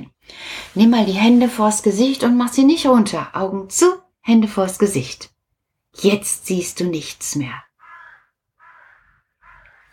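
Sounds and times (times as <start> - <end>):
speech: 0.7 - 5.3, 6.0 - 7.7
crow cawing: 7.8 - 9.9.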